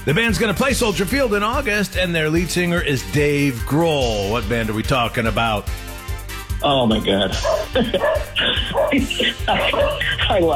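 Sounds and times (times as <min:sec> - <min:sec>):
speech: 0:00.0 - 0:05.9, 0:06.6 - 0:10.5
laughter: 0:06.9 - 0:10.5
dog barking: 0:07.4 - 0:09.1, 0:09.7 - 0:10.1.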